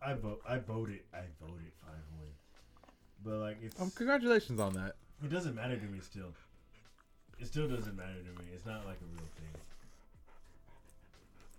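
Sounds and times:
speech: 0:00.1 - 0:02.4, 0:03.2 - 0:06.5, 0:07.4 - 0:09.8
female dog panting heavily: 0:05.3 - 0:11.5.

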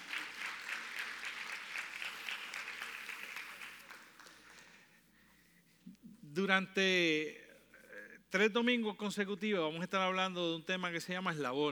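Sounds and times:
crowd applauding: 0:00.0 - 0:04.8
speech: 0:06.4 - 0:07.4, 0:08.3 - 0:11.7.

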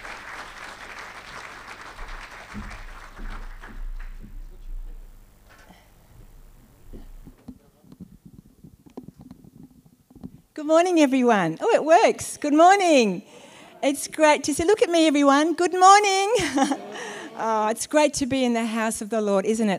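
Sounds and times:
church audience clapping to welcome a speaker: 0:00.0 - 0:05.0
low rumbling thumps: 0:02.0 - 0:07.4
speech: 0:10.6 - 0:19.7
laughter: 0:16.1 - 0:17.8.

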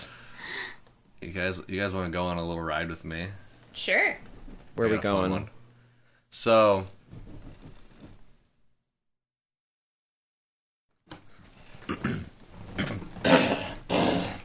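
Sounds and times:
speech: 0:01.2 - 0:05.6, 0:06.3 - 0:07.4
harsh throat clearing to bring up phlegm: 0:11.8 - 0:14.4.

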